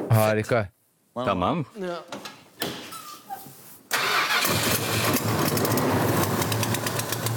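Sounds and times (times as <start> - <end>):
speech: 0.2 - 2.7
car V8 engine starter click and whir: 3.9 - 7.3.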